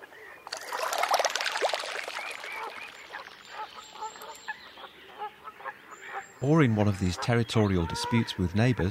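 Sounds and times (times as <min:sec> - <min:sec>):
little grebe pattering across water: 0:00.4 - 0:04.6
speech: 0:06.4 - 0:08.8.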